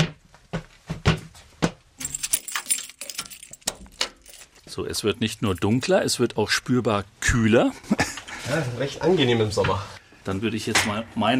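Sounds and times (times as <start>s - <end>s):
heavy door lock clunking: 2.0s - 4.6s
keys jangling: 2.0s - 4.7s, 5.4s - 6.0s
speech: 4.8s - 11.3s.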